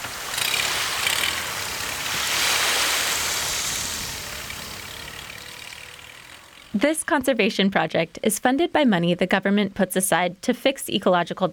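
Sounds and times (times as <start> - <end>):
splashing spray from a boat pushing through choppy waves: 0.0 - 6.8
water rushing and surging around a boat hull in choppy waves: 0.0 - 6.8
small boat engine droning: 0.0 - 7.6
speech: 6.8 - 11.5.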